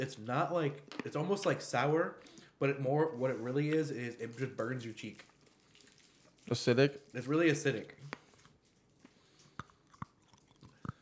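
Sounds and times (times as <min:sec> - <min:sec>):
speech: 0:00.0 - 0:05.3, 0:06.5 - 0:08.2
person chewing hard chalky compressed candy: 0:05.0 - 0:07.2, 0:08.2 - 0:11.0.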